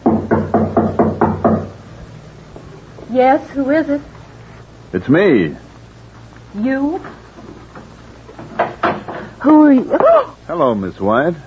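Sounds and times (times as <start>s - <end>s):
firm knocking on a wooden door: 0.0s - 1.8s, 8.4s - 9.3s
speech: 3.1s - 4.1s, 4.9s - 5.6s, 6.5s - 7.2s, 9.4s - 11.4s.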